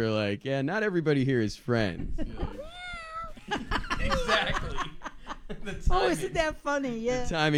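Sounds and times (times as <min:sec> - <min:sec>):
speech: 0:00.0 - 0:02.5, 0:05.6 - 0:07.5
people chatting: 0:00.0 - 0:05.0, 0:05.6 - 0:07.5
people laughing: 0:02.2 - 0:06.5
cat meowing: 0:02.5 - 0:03.4.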